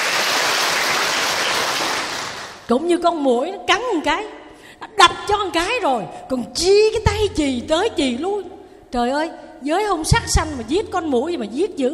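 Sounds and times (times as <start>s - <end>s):
audience applause: 0.0s - 2.7s
speech: 2.7s - 11.9s.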